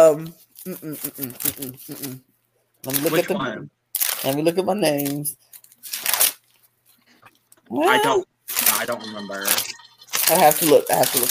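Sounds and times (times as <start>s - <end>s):
speech: 0.0s - 6.0s, 7.7s - 9.7s, 10.3s - 11.2s
paper rustling: 0.2s - 2.2s, 2.8s - 3.4s, 4.0s - 7.2s, 8.5s - 11.2s.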